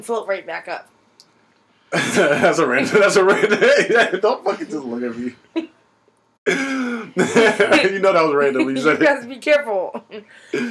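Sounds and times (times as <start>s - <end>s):
speech: 0.0s - 1.0s, 1.9s - 5.8s, 6.4s - 10.6s
loud harsh breathy cough close to the mic: 2.0s - 2.5s, 3.2s - 4.6s, 6.5s - 8.0s.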